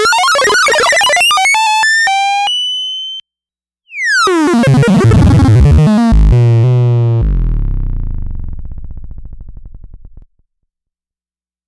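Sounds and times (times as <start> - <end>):
dry Moog Mavis synthesizer rewind and fast-forward signal: 0.1 - 3.2, 4.3 - 9.8.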